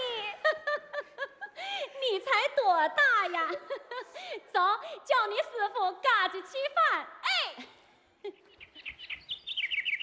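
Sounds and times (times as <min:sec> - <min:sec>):
laughter: 0:00.2 - 0:02.0
speech: 0:02.8 - 0:07.7
birds chirping in high-pitched runs of short notes: 0:08.2 - 0:10.0.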